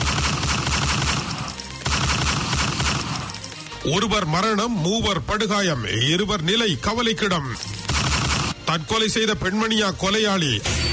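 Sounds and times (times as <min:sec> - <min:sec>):
rapid gunfire: 0:00.0 - 0:03.5, 0:07.8 - 0:08.6
speech: 0:03.8 - 0:07.8, 0:08.7 - 0:10.8.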